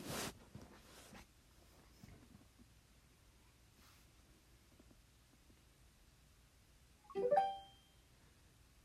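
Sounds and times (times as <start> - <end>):
Google Home Mini smart speaker connection chime: 7.1 - 8.1.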